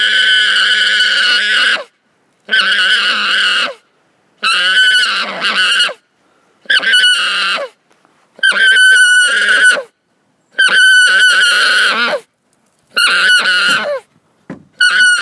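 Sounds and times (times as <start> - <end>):
alpacas screaming: 0.0 - 1.9, 2.5 - 3.8, 4.4 - 6.0, 6.6 - 7.8, 8.4 - 9.9, 10.6 - 12.3, 12.9 - 14.1, 14.8 - 15.2.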